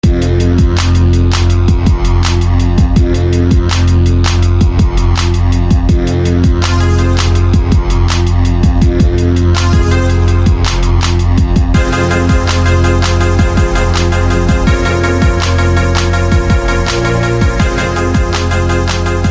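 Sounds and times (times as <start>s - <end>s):
bomb synth: 0.0s - 19.2s.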